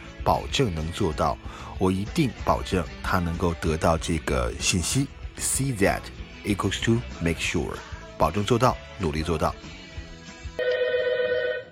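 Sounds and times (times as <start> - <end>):
speech: 0.2 - 9.8
telephone ringing with an electronic trill: 10.6 - 11.7.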